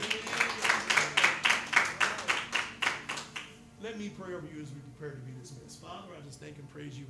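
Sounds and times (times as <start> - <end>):
crowd clapping in praise at the close of a service: 0.0 - 3.6
speech: 3.9 - 7.0.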